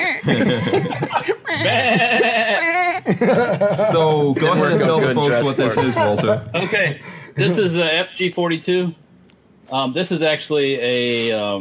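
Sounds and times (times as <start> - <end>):
laughter: 0.1 - 7.7
speech: 0.2 - 2.3, 3.2 - 9.0, 9.7 - 11.5
goat bleating: 1.6 - 2.8.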